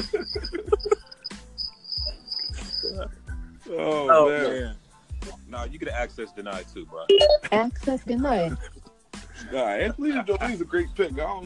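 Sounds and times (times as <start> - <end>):
laughter: 0.0 - 1.3, 7.4 - 10.9
high-pitched crickets chirping: 0.0 - 3.0
speech: 3.8 - 4.8, 5.5 - 8.8, 9.4 - 11.4.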